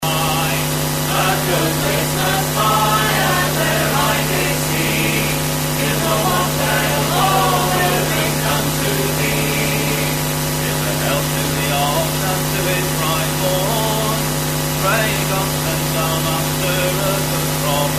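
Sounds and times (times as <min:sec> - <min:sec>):
excessive noise on cassette tape: 0:00.0 - 0:17.9
laughter: 0:01.1 - 0:12.0.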